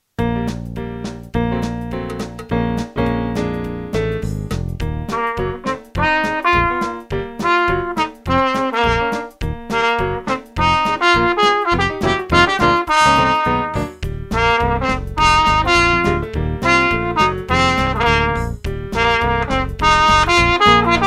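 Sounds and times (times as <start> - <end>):
jazz music: 0.2 - 21.0.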